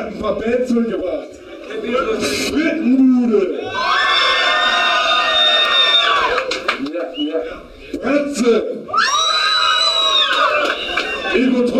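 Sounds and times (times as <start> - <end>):
speech: 0.0 - 4.1, 8.0 - 8.8
crowd cheering and screaming at a party before bands take the stage: 3.6 - 6.6, 8.9 - 11.6
shouts and whoops from a crowd: 3.6 - 6.6, 8.9 - 11.6.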